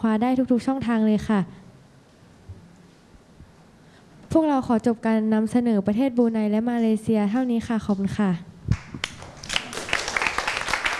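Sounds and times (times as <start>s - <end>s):
speech: 0.0s - 1.6s, 4.4s - 8.5s
students in a classroom clapping after a group presentation: 8.7s - 10.9s.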